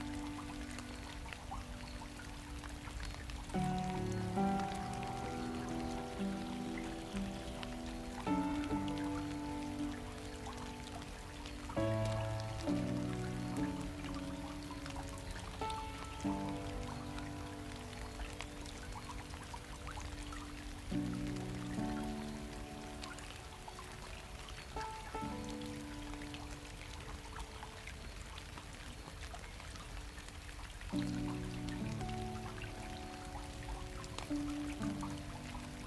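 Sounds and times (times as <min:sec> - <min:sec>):
rain falling into a stream: 0:00.0 - 0:35.8
soft mellow music with slow sustained chords: 0:00.0 - 0:35.8.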